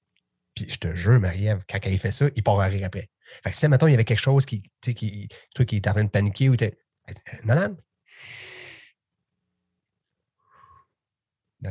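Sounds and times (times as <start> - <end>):
speech: 0.6 - 8.5
loud airy breath in: 8.1 - 9.0.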